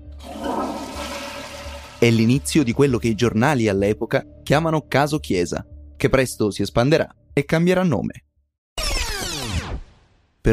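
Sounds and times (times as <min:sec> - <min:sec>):
toilet flushing: 0:00.0 - 0:03.0
speech: 0:02.0 - 0:08.3.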